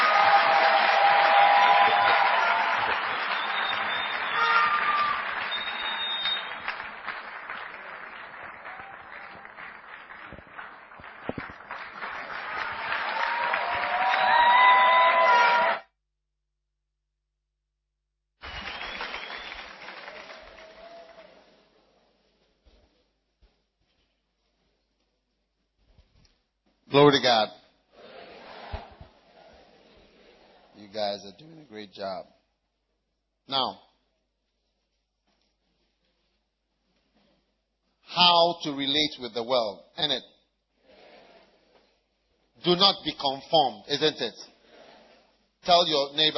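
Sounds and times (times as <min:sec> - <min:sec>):
audience clapping and cheering: 0:00.0 - 0:15.8, 0:18.4 - 0:21.7
speech: 0:27.0 - 0:27.6, 0:31.4 - 0:32.4, 0:33.5 - 0:33.8, 0:38.6 - 0:40.3, 0:42.6 - 0:44.5, 0:45.6 - 0:46.3.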